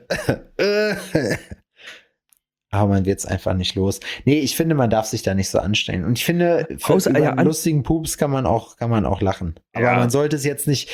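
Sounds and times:
person imitating a cough in a cartoonish manner: 0.0s - 1.6s
speech: 0.1s - 1.6s, 2.7s - 10.9s.

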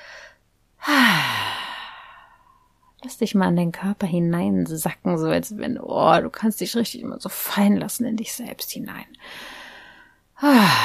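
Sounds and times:
person breathing in through nose and out through mouth: 0.0s - 2.7s, 9.2s - 10.8s
speech: 3.0s - 9.5s, 10.4s - 10.8s.

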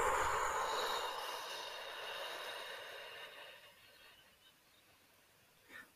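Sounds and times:
long steady exhale during a guided breathing exercise: 0.0s - 4.2s.

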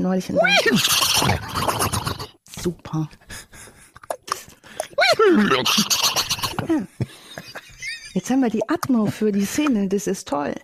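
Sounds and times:
speech: 0.0s - 2.0s, 2.6s - 3.5s, 5.2s - 7.2s, 8.2s - 10.6s
person imitating a horse whinny: 0.4s - 2.4s, 5.0s - 6.7s.

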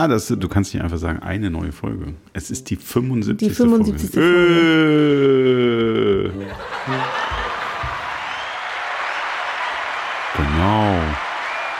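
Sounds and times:
speech: 0.0s - 7.2s
laughter: 4.1s - 8.5s
canned crowd applause from a soundboard button: 6.6s - 11.7s.

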